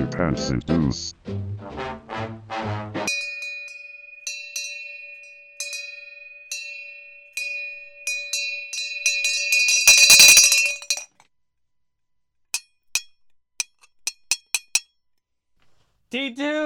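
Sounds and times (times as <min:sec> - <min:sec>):
speech: 0:00.1 - 0:02.3, 0:16.1 - 0:16.6
small bell dinging: 0:03.1 - 0:11.1.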